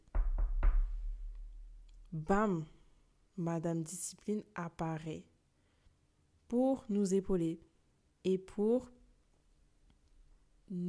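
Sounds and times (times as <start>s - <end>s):
firm knocks on a wooden door: 0.0s - 1.4s
speech: 2.1s - 2.8s, 3.4s - 5.3s, 6.5s - 9.0s, 10.7s - 10.8s.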